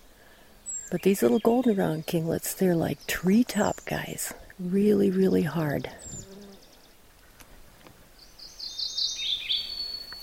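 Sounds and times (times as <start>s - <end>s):
quiet hiss: 0.0s - 10.2s
mourning warbler singing in brushy ground under quaking aspen: 0.2s - 7.1s, 8.1s - 10.2s
speech: 0.9s - 6.2s.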